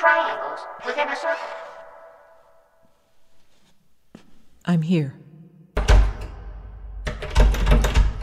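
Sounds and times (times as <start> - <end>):
speech: 0.2 - 1.7, 4.6 - 5.2
heavy locked stone door thudding and rattling: 7.0 - 8.2.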